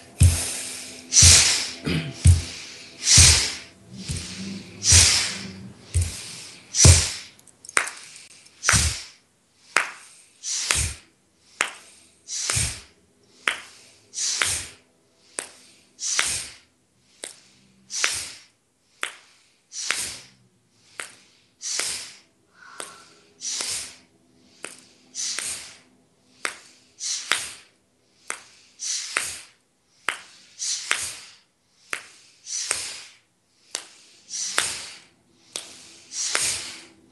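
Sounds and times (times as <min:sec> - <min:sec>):
breathing in and out in a group breathing exercise: 0:00.0 - 0:37.1.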